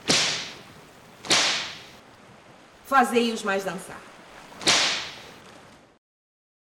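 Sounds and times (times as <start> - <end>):
whip cracks swung hard by sailors aboard a ship: 0.0 - 0.6, 1.2 - 1.9, 4.6 - 5.2
speech: 2.9 - 4.1.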